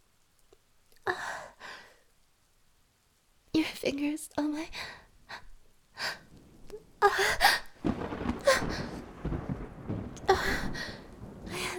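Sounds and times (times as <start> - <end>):
speech: 3.8 - 4.9
deep rolling rumble of thunder: 6.0 - 11.7.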